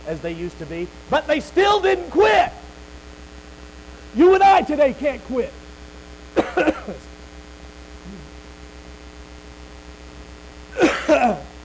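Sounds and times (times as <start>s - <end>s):
steady electrical hum: 0.0s - 11.6s
speech: 0.1s - 2.6s, 4.1s - 5.6s, 6.6s - 7.1s
person coughing: 6.4s - 7.1s, 8.1s - 8.3s, 10.7s - 11.6s.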